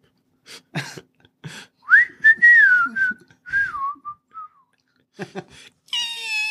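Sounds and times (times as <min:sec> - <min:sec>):
person whistling a wavering tone imitating a creature's flying whistle: 0:01.9 - 0:04.7
high squeak: 0:05.9 - 0:06.4.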